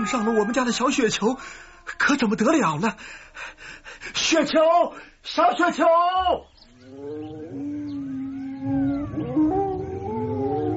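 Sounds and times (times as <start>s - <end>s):
wild wolves howling on a hilltop: 0.0s - 1.4s, 6.8s - 10.7s
speech: 0.0s - 7.7s.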